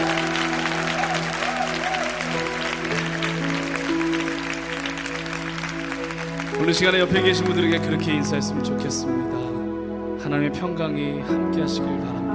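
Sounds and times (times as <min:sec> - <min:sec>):
audience applauding: 0:00.0 - 0:08.2
speech: 0:06.6 - 0:09.5, 0:10.3 - 0:12.2.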